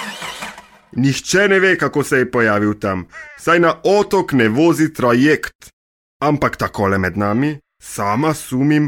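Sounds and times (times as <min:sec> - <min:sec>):
car engine cranking and starting on Susak island in Croatia: 0:00.0 - 0:00.9
speech: 0:01.0 - 0:08.8.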